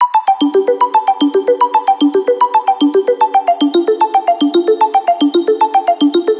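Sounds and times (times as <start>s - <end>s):
arpeggiated melodic synth bass loop: 0.4s - 6.3s.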